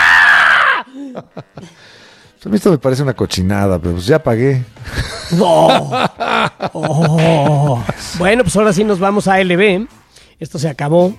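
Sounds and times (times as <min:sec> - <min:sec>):
loud sustained scream: 0:00.0 - 0:00.9
speech: 0:01.2 - 0:11.1
laughter: 0:04.8 - 0:08.5.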